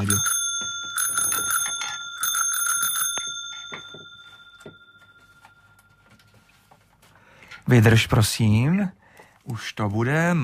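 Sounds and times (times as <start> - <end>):
speech: 0.0 - 0.3, 7.7 - 10.4
bicycle bell ringing: 0.0 - 6.0.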